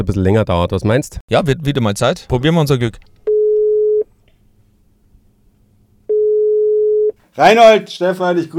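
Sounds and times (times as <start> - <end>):
speech: 0.0 - 3.2, 7.4 - 8.5
telephone ringback tone while placing a call from a traffic jam: 3.3 - 4.0, 6.1 - 7.2.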